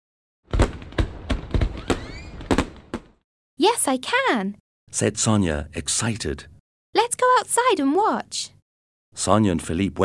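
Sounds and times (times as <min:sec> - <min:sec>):
fireworks exploding: 0:00.5 - 0:03.2
speech: 0:03.6 - 0:08.6, 0:09.2 - 0:10.0.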